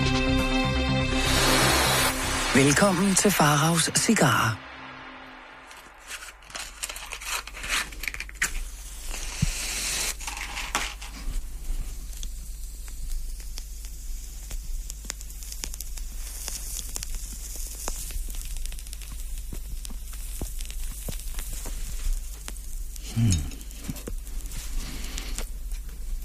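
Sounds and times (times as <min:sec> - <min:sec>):
steady low hum: 0:00.0 - 0:09.0
flame flare: 0:00.0 - 0:26.2
cigar crackling as lit and puffed: 0:01.1 - 0:26.2
speech: 0:02.6 - 0:04.7
small pops: 0:06.1 - 0:26.2.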